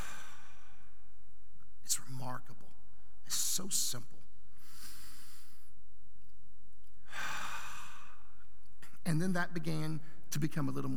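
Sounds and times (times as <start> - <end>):
long breathy exhale: 0.0 - 0.8, 7.1 - 8.2
deep inhale: 0.0 - 1.0, 4.6 - 5.7, 7.0 - 8.4
speech: 2.0 - 4.2, 9.1 - 10.9.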